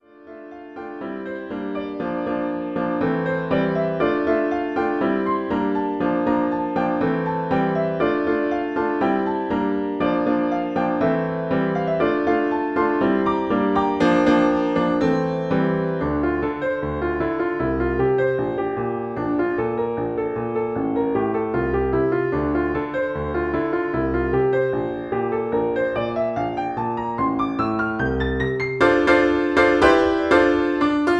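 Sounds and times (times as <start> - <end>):
rock prelude piano solo: 0.0 - 31.1.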